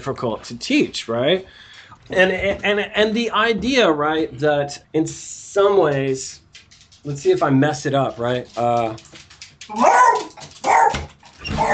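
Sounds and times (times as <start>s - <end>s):
speech: 0.0s - 6.4s, 7.0s - 11.7s
several dogs barking: 9.7s - 11.7s.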